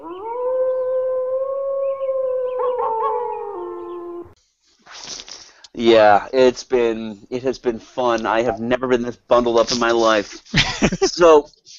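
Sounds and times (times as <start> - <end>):
wolves howling in a chorus: 0.0 - 4.4
speech: 5.8 - 11.7
laughter: 10.3 - 11.3.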